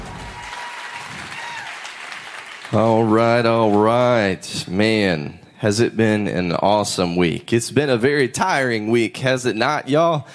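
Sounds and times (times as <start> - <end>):
church audience applauding to welcome a student pastor: 0.0 - 4.2
speech: 2.7 - 10.3.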